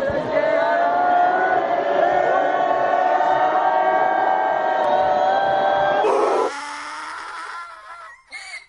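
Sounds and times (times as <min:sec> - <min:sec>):
crowd of taxi drivers shouting and booing: 0:00.0 - 0:06.5.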